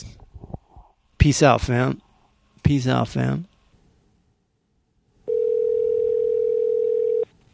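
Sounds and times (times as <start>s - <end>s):
faint hiss: 0.0s - 7.5s
speech: 1.2s - 2.0s, 2.6s - 3.5s
telephone ringback tone as a phone call is placed: 5.3s - 7.3s.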